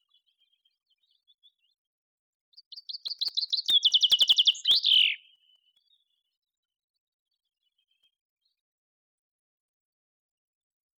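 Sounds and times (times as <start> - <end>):
Common chaffinch Fringilla coelebs song: 2.6 - 6.0.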